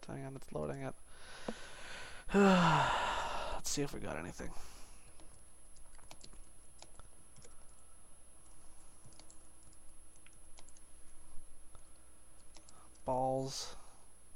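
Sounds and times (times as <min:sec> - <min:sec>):
speech: 0:00.0 - 0:01.7, 0:02.3 - 0:04.7, 0:13.1 - 0:13.8
low hum: 0:00.0 - 0:14.3
typing on a computer keyboard: 0:05.1 - 0:07.8, 0:09.0 - 0:10.9, 0:11.8 - 0:13.1.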